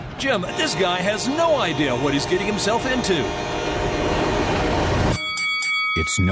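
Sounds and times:
heavy 6,000-ton train rumbling past on railroad tracks: 0.0 - 5.2
speech: 0.2 - 3.9, 6.0 - 6.3.

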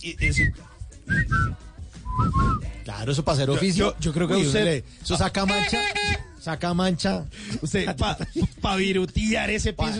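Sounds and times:
whistled melody: 0.0 - 2.8
speech: 0.0 - 9.9
electronic rock backing: 0.9 - 7.2.

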